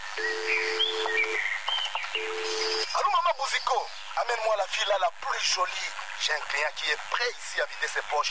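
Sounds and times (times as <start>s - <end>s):
electronic phone keypad tones: 0.2s - 1.4s, 2.1s - 3.0s
speech: 3.6s - 8.2s.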